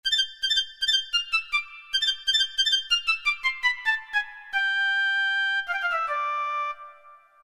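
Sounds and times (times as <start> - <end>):
piccolo sound from a Roland MT-32: 0.0 - 7.4.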